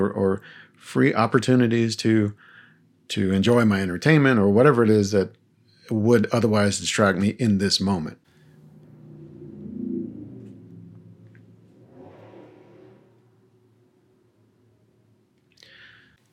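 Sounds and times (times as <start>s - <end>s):
speech: 0.0s - 2.5s, 3.1s - 8.2s
car with intensely loud engine driving past through a neighborhood: 8.3s - 15.0s.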